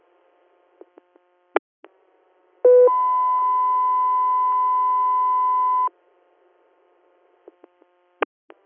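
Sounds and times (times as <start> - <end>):
radio dispatch alert tones for an air medical interfacility transfer request: 2.7 - 5.9.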